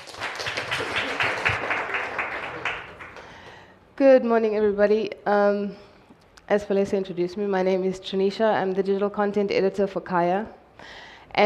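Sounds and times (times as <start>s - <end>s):
crowd applauding: 0.0s - 3.6s
speech: 4.0s - 5.9s, 6.5s - 11.4s.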